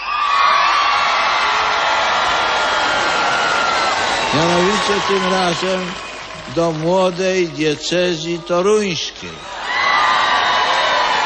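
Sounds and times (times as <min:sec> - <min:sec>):
whoops rising above the crowd: 0:00.0 - 0:06.4, 0:09.4 - 0:11.2
large crowd of young people shouting and cheering: 0:00.0 - 0:11.2
speech: 0:04.3 - 0:09.5.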